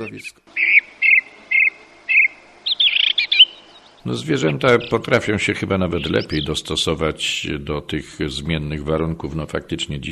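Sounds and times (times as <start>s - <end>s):
speech: 0.0s - 0.7s, 4.0s - 10.1s
starlings singing over a lake: 0.0s - 6.8s.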